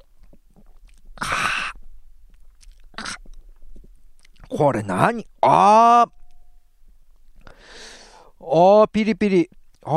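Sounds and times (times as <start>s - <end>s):
faint mouth sounds: 0.0s - 4.6s
person slurping a cloudy drink: 0.6s - 1.8s
speech: 4.6s - 6.2s, 8.5s - 9.9s.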